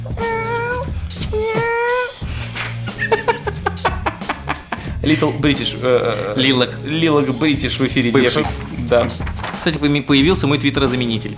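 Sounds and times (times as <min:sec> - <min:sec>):
squeaky mews imitated by a person: 0:00.0 - 0:02.2
person imitating kitten meows: 0:00.1 - 0:02.2
laughter: 0:02.3 - 0:06.6
speech: 0:05.0 - 0:11.3.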